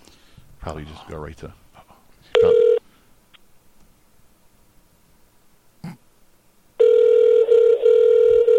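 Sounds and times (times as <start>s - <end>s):
speech: 0.6s - 1.6s
phone line tone: 2.4s - 2.8s, 6.8s - 8.5s.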